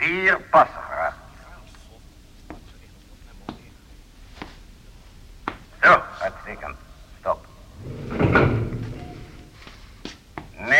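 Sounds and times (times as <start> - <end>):
speech: 0.3 - 0.9
elevator doors sliding with a rumbling mechanical rush: 7.7 - 9.7.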